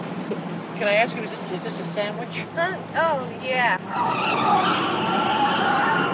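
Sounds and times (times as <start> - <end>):
car engine and road noise: 0.0 - 6.1
speech: 0.8 - 5.8
car tires squealing while swerving: 3.7 - 6.1.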